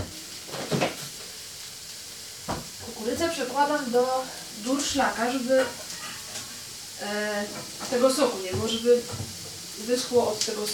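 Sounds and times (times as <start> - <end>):
clatter of utensil on pan: 0.0 - 1.2, 5.5 - 6.6, 7.5 - 8.0
food sizzling and crackling in a frying pan: 0.0 - 10.7
speech: 3.2 - 5.8, 7.0 - 10.7.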